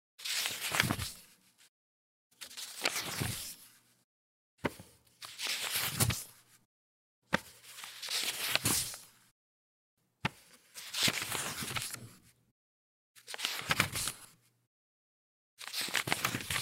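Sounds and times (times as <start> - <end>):
paper pages rustling: 0.2 - 1.6, 2.4 - 3.8, 4.6 - 6.6, 7.3 - 9.1, 10.2 - 12.3, 13.2 - 14.4, 15.6 - 16.5.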